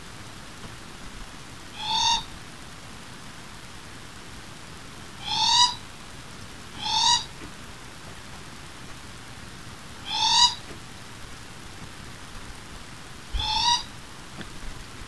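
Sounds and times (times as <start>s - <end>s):
morepork cree call: 1.7s - 2.4s, 5.2s - 6.0s, 6.7s - 7.5s, 10.0s - 10.8s, 13.2s - 14.1s.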